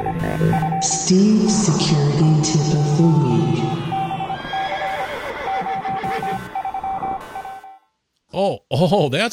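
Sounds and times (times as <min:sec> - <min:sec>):
speech: 0:00.0 - 0:03.6, 0:08.4 - 0:09.3
steady pulsing beep-like tone: 0:00.0 - 0:07.8
horse neighing: 0:04.4 - 0:06.5.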